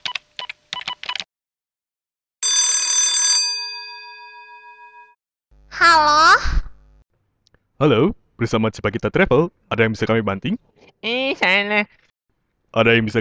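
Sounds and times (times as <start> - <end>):
telephone ringing tone during a call to a travel agency: 2.4 - 5.1
speech: 7.8 - 12.0, 12.7 - 13.1.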